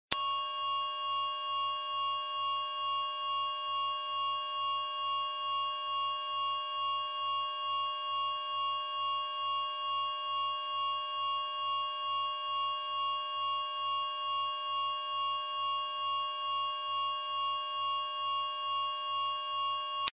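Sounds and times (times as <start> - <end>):
high-pitched alarm: 0.0 - 20.1.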